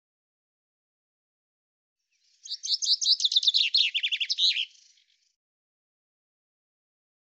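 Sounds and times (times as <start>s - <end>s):
common chaffinch song: 2.0s - 5.4s.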